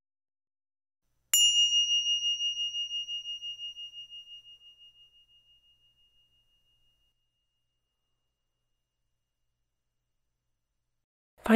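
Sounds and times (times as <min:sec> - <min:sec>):
mindfulness bell struck and ringing: 0:01.4 - 0:07.7.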